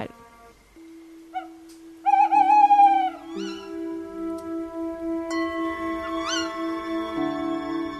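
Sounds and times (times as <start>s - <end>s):
owls hooting at night: 0.8s - 4.3s, 5.6s - 7.9s.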